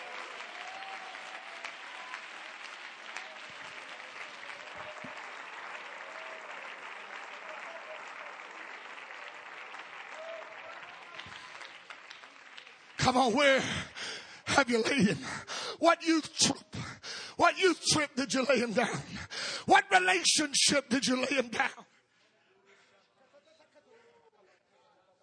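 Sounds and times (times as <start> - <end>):
large church audience clapping in praise: 0.0 - 15.6
speech: 13.1 - 13.9, 14.6 - 16.6, 17.4 - 21.8.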